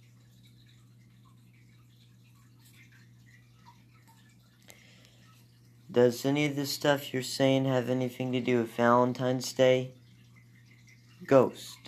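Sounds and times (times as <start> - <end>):
faint irregular water drips: 0.0 - 11.8
steady low electrical hum: 0.0 - 11.8
speech: 5.9 - 10.0, 11.3 - 11.8.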